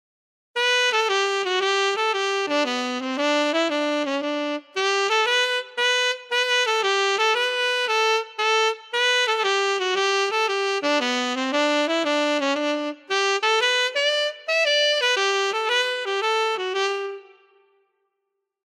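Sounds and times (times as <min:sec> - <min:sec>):
tenor saxophone: 0:00.6 - 0:17.9.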